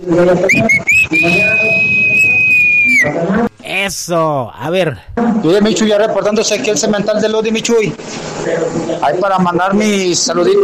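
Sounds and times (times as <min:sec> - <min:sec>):
speech: 0:00.0 - 0:02.2, 0:03.0 - 0:10.6
person whistling: 0:00.5 - 0:03.1.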